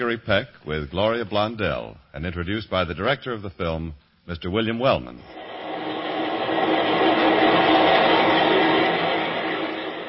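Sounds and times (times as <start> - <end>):
speech: 0.0 - 5.4
elevated train roaring overhead: 5.4 - 10.0.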